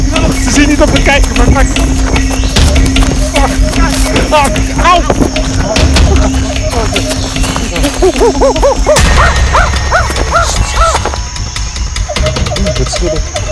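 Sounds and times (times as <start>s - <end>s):
busy outdoor noise: 0.0s - 13.5s
speech: 0.8s - 2.3s, 4.3s - 5.2s, 8.0s - 9.4s, 12.8s - 13.4s
dogs barking with short high yelps: 1.7s - 13.5s
laughter: 3.0s - 11.1s.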